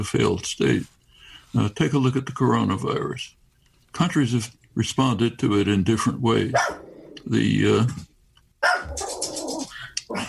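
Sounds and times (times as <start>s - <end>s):
speech: 0.0s - 8.1s
dog barking or yelping: 6.5s - 7.0s, 8.6s - 9.4s.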